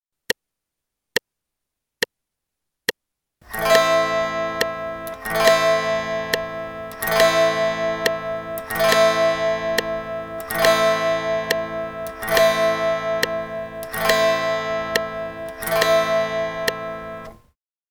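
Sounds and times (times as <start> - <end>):
guitar strumming quarter notes in A minor: 3.5 - 17.4.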